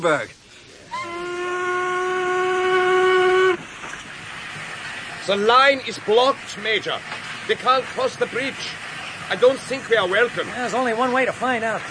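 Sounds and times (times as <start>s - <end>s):
speech: 0.0s - 0.4s, 5.3s - 11.8s
steam train whistle blowing: 0.9s - 3.7s.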